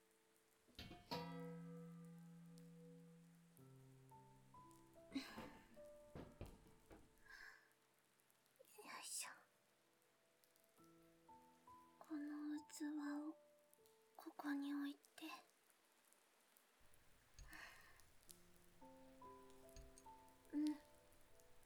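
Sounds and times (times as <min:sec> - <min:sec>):
soft rain-like patter: 0:00.0 - 0:21.6
water dripping from a roof leak: 0:00.8 - 0:07.5, 0:16.9 - 0:21.6
faint breathy sounds: 0:05.0 - 0:07.8, 0:17.4 - 0:21.6
speech: 0:05.2 - 0:05.6.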